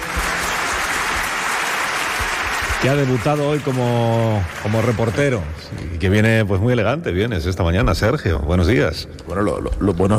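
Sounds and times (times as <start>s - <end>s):
applause from many hands for a guest being welcomed: 0.0s - 6.2s
speech: 2.8s - 10.1s.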